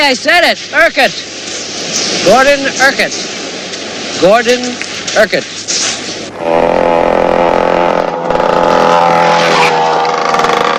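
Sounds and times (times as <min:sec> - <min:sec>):
speech: 0:00.0 - 0:03.4, 0:04.2 - 0:05.8
dirt bike speeding down a road: 0:06.3 - 0:10.7.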